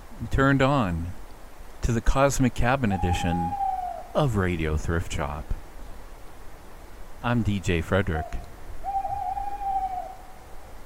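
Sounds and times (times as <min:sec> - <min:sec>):
soft steady outdoor background: 0:00.0 - 0:10.8
speech: 0:00.3 - 0:01.2, 0:01.8 - 0:03.6, 0:04.2 - 0:05.6, 0:07.2 - 0:08.5
owl hooting in mossy woods: 0:02.8 - 0:04.2, 0:08.1 - 0:10.7.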